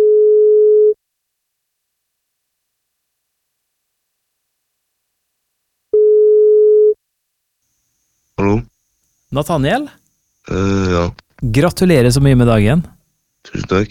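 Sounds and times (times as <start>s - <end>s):
telephone ringback tone while calling: 0.0s - 1.0s, 6.0s - 7.0s
speech: 9.3s - 13.9s.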